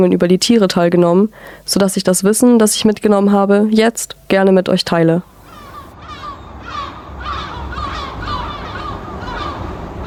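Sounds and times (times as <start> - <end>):
speech: 0.0 - 5.3
low rumble of wind or surf: 5.2 - 10.0
seabird colony calling at the Lummenfelsen cliff on Helgoland, Germany: 5.3 - 10.0.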